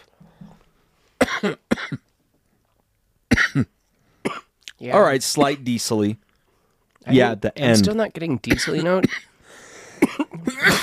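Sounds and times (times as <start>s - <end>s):
person coughing harshly after smoking a pipe: 1.2s - 2.1s, 3.3s - 4.5s, 8.5s - 9.4s, 10.0s - 10.8s
speech: 1.4s - 2.0s, 3.6s - 3.8s, 4.8s - 6.2s, 7.0s - 9.3s.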